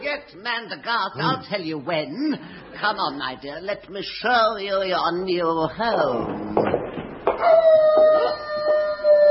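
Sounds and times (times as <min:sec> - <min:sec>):
speech: 0:00.2 - 0:06.7, 0:07.4 - 0:08.5
wolf howling: 0:07.4 - 0:09.2.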